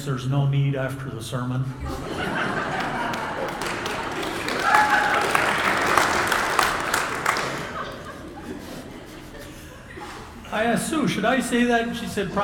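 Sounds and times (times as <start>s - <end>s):
speech: 0.0s - 2.8s, 10.5s - 12.4s
faint laughter: 1.8s - 4.0s, 7.4s - 10.4s
audience applauding in a reverberant room: 2.4s - 8.3s.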